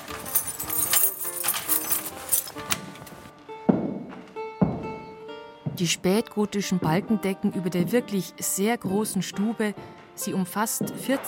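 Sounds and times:
key rattling and clicking in a door lock: 0:00.0 - 0:03.0
heavy wooden door thuds as a large castle door is pushed open: 0:03.7 - 0:05.1
speech: 0:05.8 - 0:11.2.

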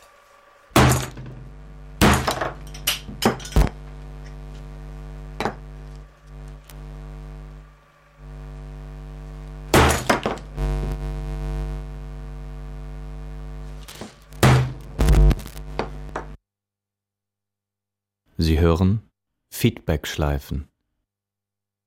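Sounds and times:
steady low hum: 0:00.0 - 0:16.4
hammer smashing a loudspeaker: 0:00.7 - 0:03.7, 0:09.7 - 0:10.4, 0:14.0 - 0:14.8
speech: 0:18.4 - 0:19.0, 0:19.6 - 0:20.7.

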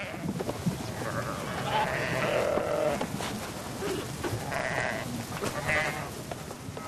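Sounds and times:
steady outdoor rustle: 0:00.0 - 0:06.8
flock of sheep bleating: 0:01.0 - 0:03.1, 0:03.9 - 0:06.2.

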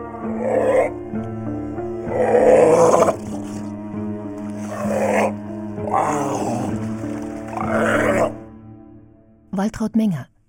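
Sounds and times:
harbor seal on the North Sea coast growling and grunting: 0:00.0 - 0:01.1, 0:01.8 - 0:03.8, 0:04.4 - 0:08.5
speech: 0:09.8 - 0:10.3.

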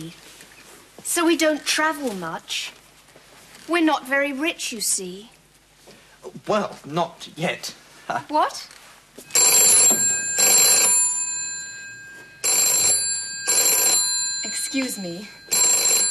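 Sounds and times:
speech: 0:00.0 - 0:00.3, 0:01.1 - 0:02.8, 0:03.7 - 0:05.4, 0:06.2 - 0:09.3, 0:14.7 - 0:15.4
telephone bell ringing: 0:09.3 - 0:16.0.

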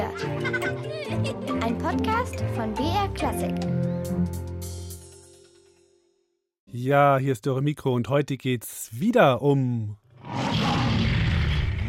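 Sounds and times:
speech: 0:01.2 - 0:04.5, 0:06.8 - 0:10.5
lion roaring: 0:10.1 - 0:11.8.

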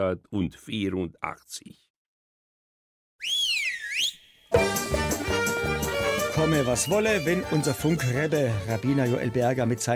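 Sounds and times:
speech: 0:00.0 - 0:01.9, 0:03.2 - 0:03.4, 0:06.4 - 0:09.9
whistle signal marking a program segment: 0:03.2 - 0:04.6, 0:06.4 - 0:07.8
instrumental music: 0:04.5 - 0:09.9.

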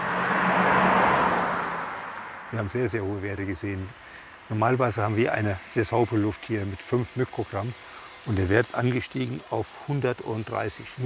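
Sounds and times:
diesel car driving past a roadside measuring station: 0:00.0 - 0:03.4
speech: 0:02.5 - 0:11.0.

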